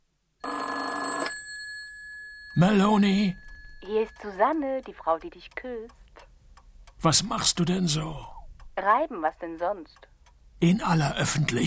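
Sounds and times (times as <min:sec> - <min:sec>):
telephone bell ringing: 0:00.4 - 0:04.4
speech: 0:02.6 - 0:06.0, 0:07.0 - 0:11.6.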